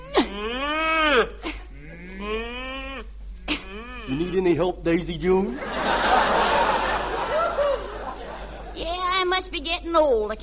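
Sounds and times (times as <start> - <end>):
cow mooing: 0.5 - 3.0
speech: 4.4 - 6.0, 9.5 - 10.4
laughter: 5.5 - 8.8.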